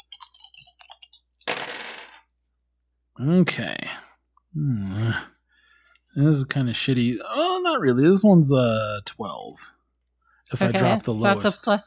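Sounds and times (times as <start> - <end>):
plastic dice tumbling across a hard surface: 0.0 - 2.3
speech: 3.2 - 5.3, 6.1 - 9.8, 10.5 - 11.8.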